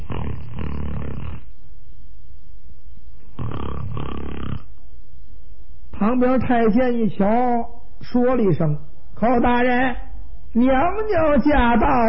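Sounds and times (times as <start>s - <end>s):
man's voice imitating loud rasping snoring: 0.0s - 1.5s, 3.4s - 4.7s
speech: 6.0s - 12.0s.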